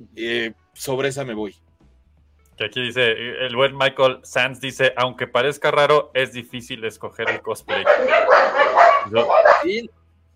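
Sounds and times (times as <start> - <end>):
speech: 0.1 - 1.7, 2.6 - 10.0
dogs barking: 7.2 - 9.8.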